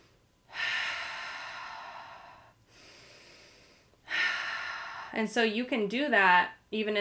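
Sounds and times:
slow deep breathing to calm the nervous system: 0.0s - 5.2s
speech: 5.2s - 6.9s.

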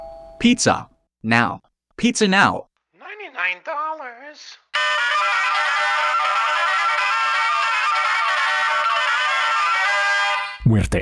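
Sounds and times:
speech: 0.4s - 2.7s, 3.4s - 4.6s, 10.7s - 10.9s
telephones of a radio call-in show ringing: 4.8s - 10.6s.

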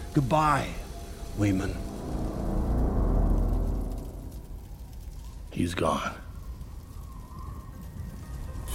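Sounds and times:
speech: 0.2s - 0.8s, 1.4s - 2.0s, 5.6s - 6.2s
thunderous boom with roaring rumble: 1.6s - 5.4s.

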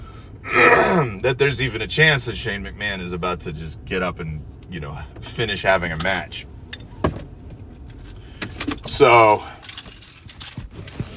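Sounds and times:
speech: 1.2s - 6.5s, 8.8s - 9.6s
keys jangling and clinking: 7.8s - 11.1s.

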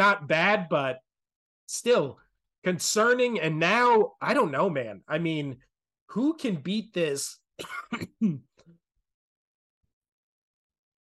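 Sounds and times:
speech: 0.0s - 1.1s, 1.7s - 8.5s
harsh coughing: 7.6s - 8.7s
throat clearing: 7.6s - 8.8s.

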